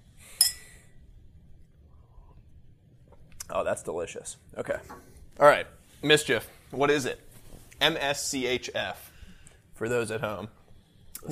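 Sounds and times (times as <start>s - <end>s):
quiet low hum: 0.0s - 11.3s
glasses clinking in a toast: 0.4s - 0.8s
speech: 3.5s - 9.1s, 9.8s - 10.6s.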